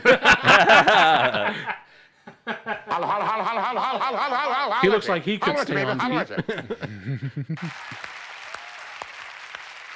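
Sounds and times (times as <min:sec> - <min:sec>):
laughter: 0:00.0 - 0:08.0
speech: 0:04.8 - 0:08.0
crowd applauding: 0:07.6 - 0:09.9.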